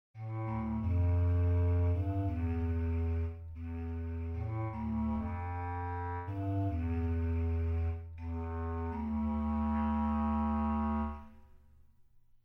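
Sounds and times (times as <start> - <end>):
bass clarinet: 0.2 - 11.6.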